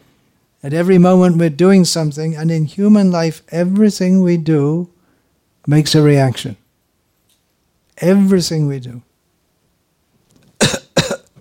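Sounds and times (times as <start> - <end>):
speech: 0.6 - 4.9, 5.6 - 6.6, 8.0 - 9.1
person coughing: 10.6 - 11.3.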